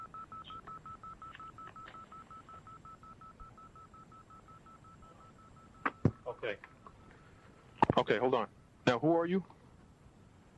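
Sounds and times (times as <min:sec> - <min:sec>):
short electronic telephone keypad beeps: 0:00.0 - 0:07.0
faint clicks and handling noises of switching phones: 0:00.6 - 0:02.7
speech: 0:06.4 - 0:06.7, 0:08.0 - 0:09.6.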